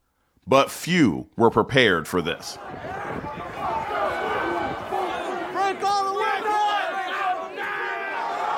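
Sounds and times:
speech: 0.5 - 3.0
large angry rioting crowd shouting during building attack: 2.4 - 8.5.

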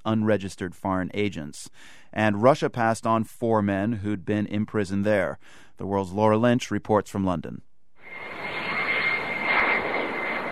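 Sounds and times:
speech: 0.0 - 8.2
jet plane engines roaring while landing on tarmac: 8.0 - 10.5.

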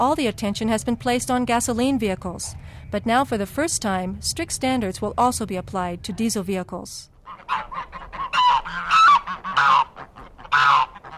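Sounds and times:
speech: 0.0 - 7.9
flock of geese honking on a farm outside a city: 7.2 - 11.1.

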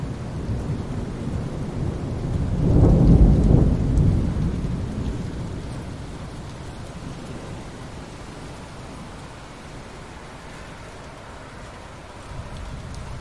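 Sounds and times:
thunder rumbling: 0.0 - 9.3, 12.3 - 13.2
steady rain: 0.0 - 13.2.

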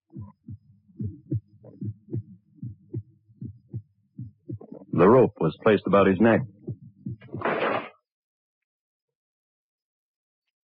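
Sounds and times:
fast pounding heartbeat: 0.1 - 7.5
speech: 5.0 - 6.6.

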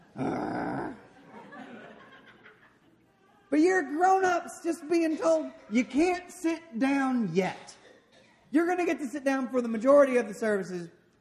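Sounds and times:
laughter: 0.0 - 3.4
child's rough growl: 0.2 - 1.1
speech: 3.5 - 7.8, 8.5 - 11.0.

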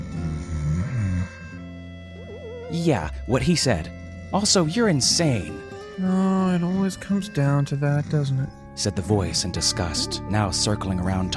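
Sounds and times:
deep rumbling snore: 0.0 - 1.6
speech: 2.7 - 11.3.

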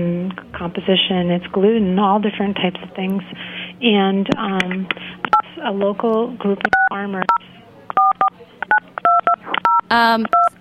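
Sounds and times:
speech: 0.0 - 7.6, 9.9 - 10.5
telephone keypad dialing tones: 6.7 - 10.5.

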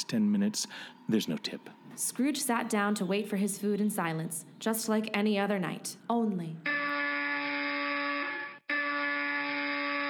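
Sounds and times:
speech: 0.1 - 6.8
loud harsh apartment door buzzer: 6.7 - 10.0.

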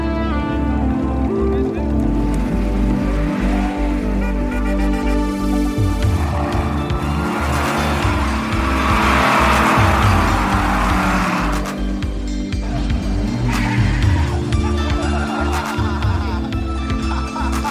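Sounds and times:
road noise: 0.0 - 17.7
old American car engine rumbling: 1.1 - 13.5
laughter: 12.5 - 17.7.

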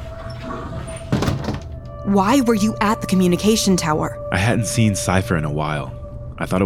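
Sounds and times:
door swinging shut with a solid thud and rattle: 0.0 - 2.0
speech: 2.1 - 6.6.

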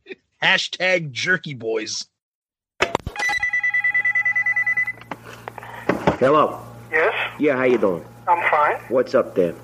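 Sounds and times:
speech: 0.4 - 2.1, 6.2 - 9.6
telephone ringing with trilling bell: 3.2 - 5.1.

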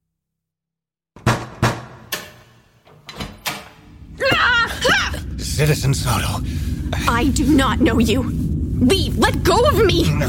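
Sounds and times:
door clicking open: 1.4 - 3.9
speech: 5.6 - 10.2.

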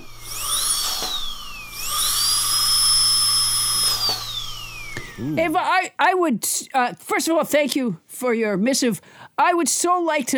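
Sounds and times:
dentist's drill whining at a high pitch: 0.0 - 5.6
speech: 5.2 - 10.3.

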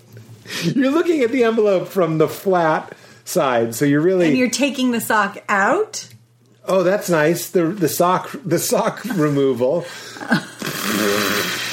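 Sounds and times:
speech: 0.6 - 11.6
raspy fart-like sputter with buzzy low tone: 10.6 - 11.7.

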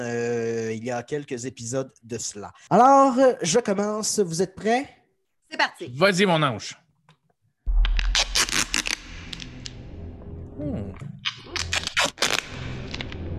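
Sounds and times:
speech: 0.0 - 6.8
low rumbling background: 7.7 - 11.7
trouser zipper rasping open in a film trailer: 8.0 - 9.5, 11.6 - 13.0.

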